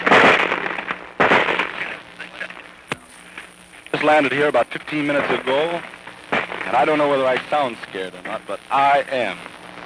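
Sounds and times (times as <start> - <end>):
rifle gunfire with bullets: 0.0 - 1.8
steady hiss: 0.0 - 9.8
speech: 4.0 - 5.9, 6.6 - 9.5.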